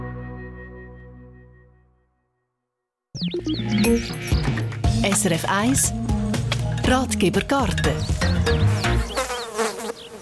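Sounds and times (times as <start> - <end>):
speech: 3.2 - 6.2, 6.9 - 8.8
bee buzzing loudly: 8.2 - 10.2.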